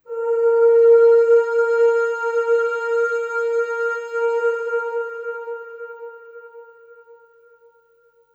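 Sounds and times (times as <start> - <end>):
voice singing long ooh with long reverb: 0.0 - 7.4.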